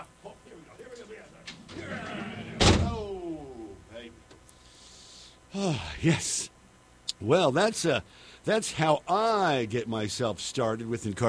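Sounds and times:
big heavy door slamming shut with metallic ring: 1.6s - 3.1s
speech: 5.5s - 6.5s, 7.2s - 11.2s.

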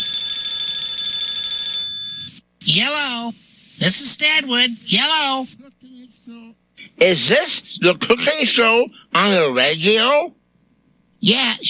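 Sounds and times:
telephone ringing with electronic bell-like tone: 0.0s - 2.3s
speech: 2.8s - 10.4s, 11.2s - 11.6s.

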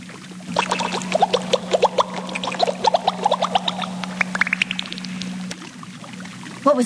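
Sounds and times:
steady low hum: 0.5s - 5.8s
water splashing and gurgling: 0.5s - 6.5s
bubbling water trickle: 0.5s - 6.6s.

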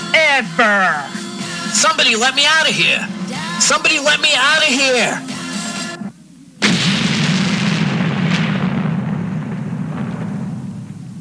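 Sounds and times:
speech: 0.4s - 5.4s
explosion with a long heavy rumbling roar: 6.6s - 11.2s.

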